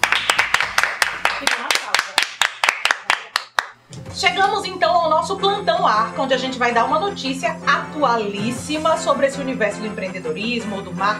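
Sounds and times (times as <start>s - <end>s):
small group applauding: 0.0s - 3.8s
speech: 1.4s - 1.7s, 4.3s - 11.1s.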